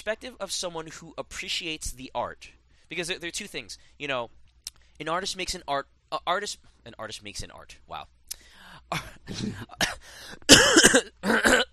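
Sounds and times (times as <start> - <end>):
speech: 0.0 - 4.4, 5.0 - 11.6
wet phlegm-raising coughing and throat clearing: 9.0 - 11.7.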